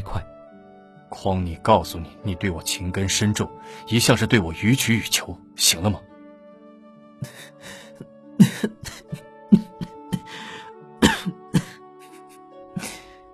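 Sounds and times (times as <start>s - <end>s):
speech: 1.1s - 6.1s, 7.2s - 7.8s
throat clearing: 8.4s - 10.3s, 11.0s - 11.8s
person coughing after laughing: 8.4s - 12.2s.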